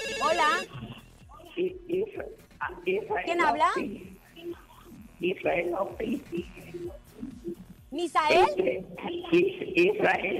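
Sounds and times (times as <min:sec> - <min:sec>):
loud warbling electronic telephone ring: 0:00.0 - 0:00.7
speech: 0:01.6 - 0:04.6, 0:05.2 - 0:07.0, 0:08.0 - 0:10.3.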